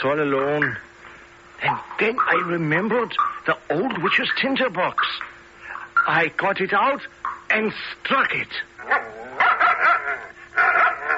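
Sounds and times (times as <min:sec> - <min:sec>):
speech: 0:00.0 - 0:00.9, 0:01.6 - 0:05.3, 0:06.1 - 0:11.0
dog barking: 0:08.8 - 0:11.1.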